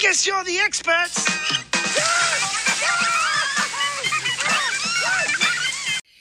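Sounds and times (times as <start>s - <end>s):
speech: 0.1s - 2.1s
cold shower running: 1.1s - 6.0s
laughter: 2.0s - 6.0s.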